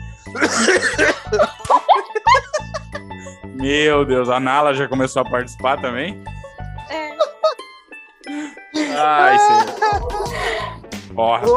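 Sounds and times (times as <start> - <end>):
speech: 0.3 - 1.5, 3.6 - 6.3, 9.0 - 10.3, 11.2 - 11.5
loud fit of harsh coughing: 0.4 - 1.6
short breathy bursts of laughter: 0.4 - 3.2, 7.1 - 7.6, 8.8 - 10.7.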